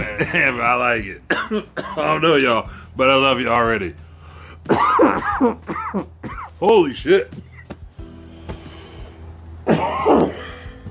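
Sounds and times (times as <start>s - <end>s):
rough hacking coughs: 0.0s - 0.6s, 1.3s - 2.2s, 4.6s - 6.6s, 9.6s - 10.6s
speech: 0.2s - 4.0s, 4.6s - 7.5s, 9.7s - 10.4s.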